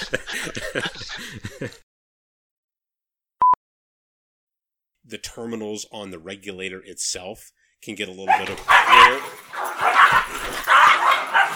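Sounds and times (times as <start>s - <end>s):
laughter: 0.0s - 1.8s
speech: 0.4s - 0.9s, 5.2s - 9.4s
dog barking excitedly with yelping whiny edges: 8.3s - 11.5s.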